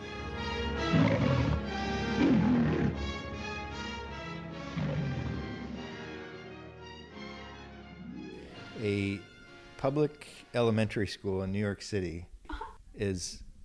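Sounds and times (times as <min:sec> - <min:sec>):
lion roaring: 0:00.7 - 0:03.3, 0:04.5 - 0:06.2, 0:07.9 - 0:08.8
speech: 0:08.8 - 0:12.3, 0:13.0 - 0:13.4.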